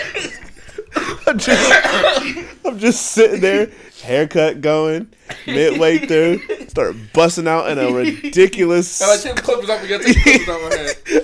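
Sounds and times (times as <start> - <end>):
harsh coughing fit: 0.0 - 3.9, 5.2 - 7.1
laughter: 0.0 - 3.9, 5.2 - 11.2
speech: 1.3 - 11.2.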